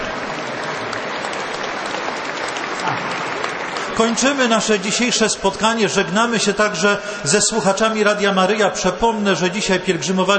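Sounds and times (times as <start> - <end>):
large crowd applauding: 0.0 - 7.6
speech: 4.0 - 10.3.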